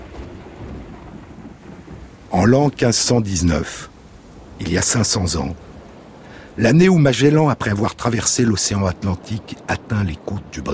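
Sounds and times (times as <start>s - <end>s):
deep rumbling thunder: 0.0s - 6.2s
rushing rain-like noise: 0.0s - 10.7s
stormy sea roaring: 0.0s - 10.7s
speech: 2.3s - 3.9s, 4.6s - 5.7s, 6.6s - 10.7s.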